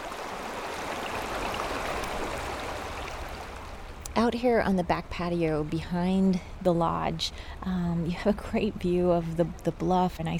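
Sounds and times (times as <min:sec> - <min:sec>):
flowing river water rushing: 0:00.0 - 0:04.0
speech: 0:04.2 - 0:10.3.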